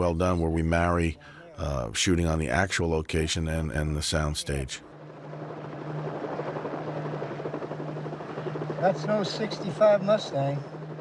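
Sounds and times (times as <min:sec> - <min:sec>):
speech: 0:00.0 - 0:04.9, 0:08.8 - 0:10.8
helicopter rotor chopping outdoors: 0:04.2 - 0:10.9.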